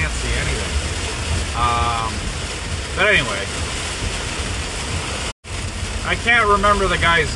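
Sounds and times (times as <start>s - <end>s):
torrential rain pouring in a storm: 0.0s - 7.3s
speech: 3.0s - 3.6s, 6.1s - 7.3s.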